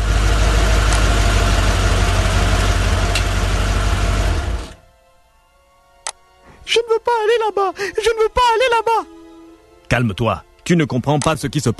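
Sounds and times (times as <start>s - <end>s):
car engine idling while parking outside a house: 0.0s - 4.8s
sharp click: 6.0s - 6.2s, 11.2s - 11.4s
speech: 7.1s - 9.2s, 9.9s - 11.7s.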